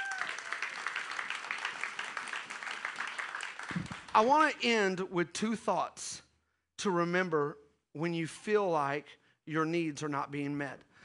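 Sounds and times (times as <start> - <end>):
crowd applauding: 0.0 - 4.3
speech: 4.2 - 6.2, 6.8 - 10.9.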